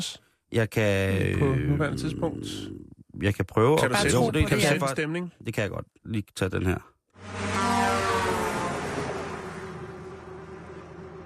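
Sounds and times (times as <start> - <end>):
speech: 0.0 - 7.4
road noise: 7.2 - 11.2
truck engine droning while driving: 7.2 - 11.2.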